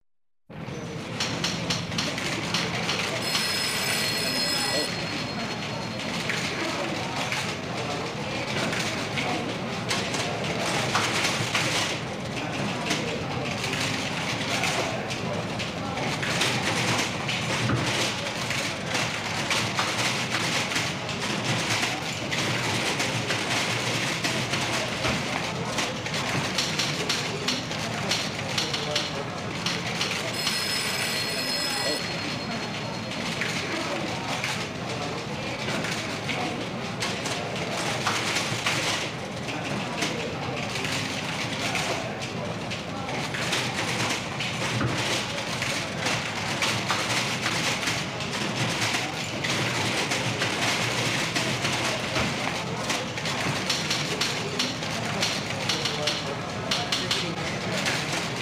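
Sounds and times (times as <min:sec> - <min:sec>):
voices in a busy office: 0:00.8 - 0:58.4
telephones ringing in a busy office: 0:02.9 - 0:06.6, 0:30.1 - 0:33.7
typewriters typing in a busy office: 0:04.6 - 0:58.4.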